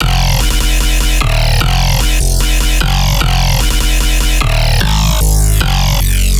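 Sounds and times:
deep dubstep bass loop in F at 150bpm: 0.0s - 6.3s.

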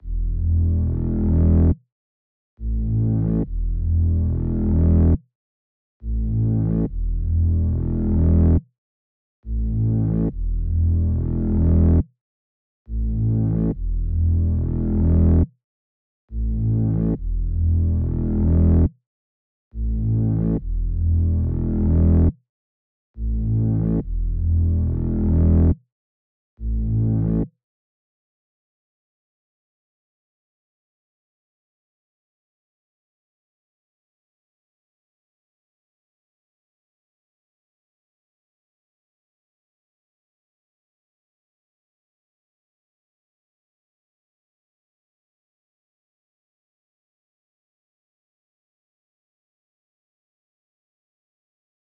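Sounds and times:
bass line in E minor: 0.0s - 1.8s, 2.6s - 5.2s, 6.0s - 8.6s, 9.4s - 12.0s, 12.9s - 15.5s, 16.3s - 18.9s, 19.8s - 22.3s, 23.2s - 25.8s, 26.6s - 27.5s.

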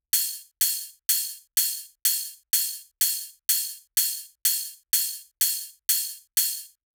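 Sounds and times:
bass house ride cymbal at 125 bpm: 0.1s - 6.7s.

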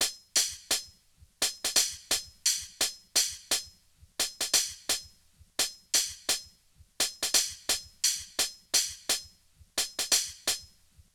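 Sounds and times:
boom bap drum loop with hi-hat: 0.0s - 11.1s.

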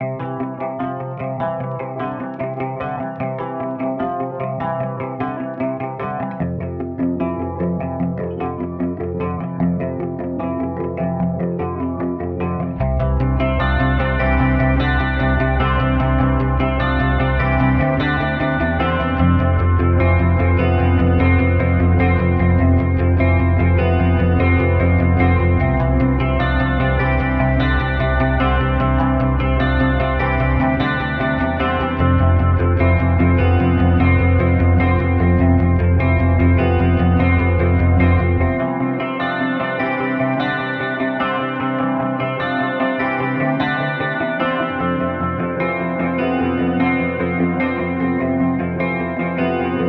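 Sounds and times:
150 BPM guitar in C major: 0.0s - 49.8s.

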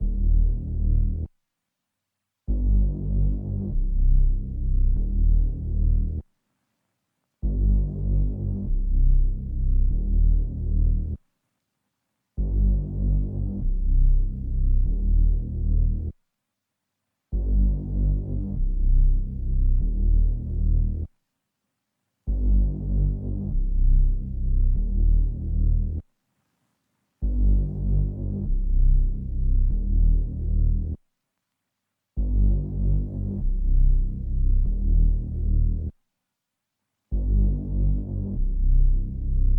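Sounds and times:
bass in G minor: 0.0s - 1.4s, 2.4s - 6.3s, 7.3s - 11.3s, 12.3s - 16.2s, 17.3s - 21.2s, 22.2s - 26.1s, 27.2s - 31.0s, 32.1s - 36.0s, 37.1s - 39.5s.

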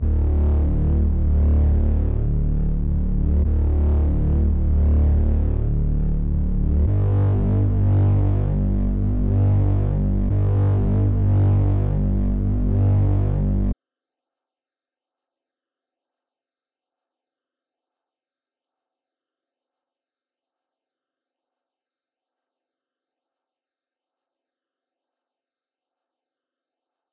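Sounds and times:
D minor drill bass melody loop: 0.0s - 13.8s.

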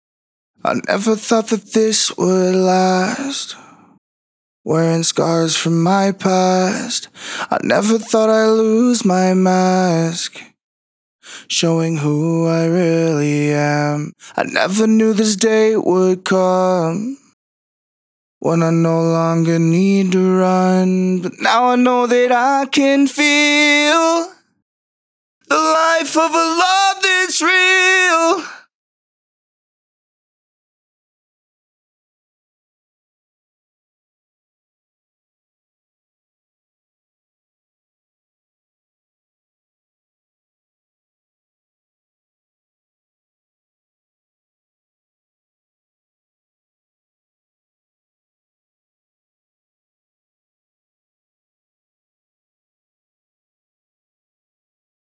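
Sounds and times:
dry male a cappella vocal intro in B minor at 140 bpm: 0.6s - 3.9s, 4.7s - 10.6s, 11.2s - 17.4s, 18.4s - 24.4s, 25.4s - 28.7s.

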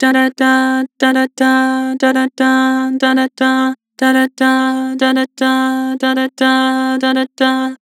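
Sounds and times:
vocal singing dah: 0.0s - 7.9s.

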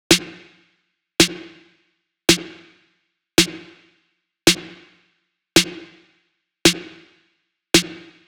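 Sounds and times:
experimental snare drum loop at 110 BPM: 0.0s - 0.4s, 1.2s - 1.6s, 2.3s - 2.6s, 3.4s - 3.7s, 4.5s - 4.8s, 5.6s - 6.0s, 6.7s - 7.0s, 7.8s - 8.2s.

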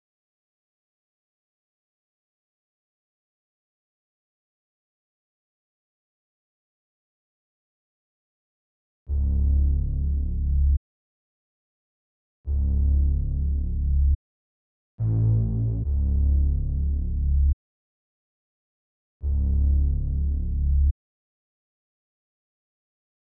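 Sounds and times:
C sharp minor bass melody at 142 BPM: 9.1s - 10.8s, 12.5s - 14.2s, 15.0s - 17.6s, 19.3s - 20.9s.

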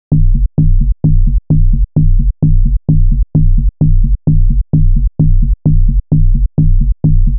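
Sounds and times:
techno bass loop at 130 BPM in B: 0.1s - 7.3s.

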